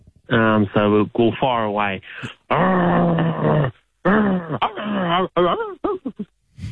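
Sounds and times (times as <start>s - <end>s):
speech: 0.3s - 3.8s
person imitating a growling dog: 2.5s - 5.8s.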